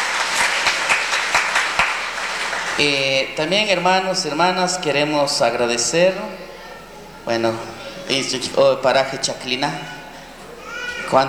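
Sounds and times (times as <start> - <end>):
audience applauding: 0.0 - 3.1
speech: 2.8 - 6.5, 7.2 - 10.0, 11.1 - 11.2.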